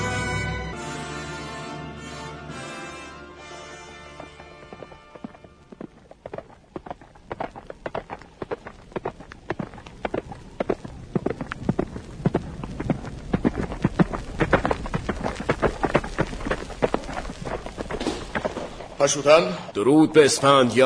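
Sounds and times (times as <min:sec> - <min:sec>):
horse galloping: 0:03.6 - 0:19.6
speech: 0:19.0 - 0:20.8.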